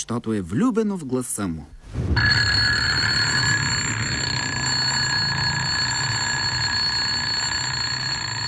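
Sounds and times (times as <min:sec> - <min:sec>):
speech: 0:00.0 - 0:02.2
continuous high-pitched ringing: 0:02.2 - 0:08.4.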